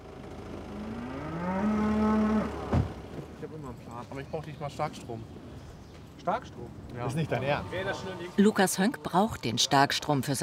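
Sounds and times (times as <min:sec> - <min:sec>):
cow mooing: 0:00.7 - 0:02.7
speech: 0:04.2 - 0:05.4, 0:06.3 - 0:10.4.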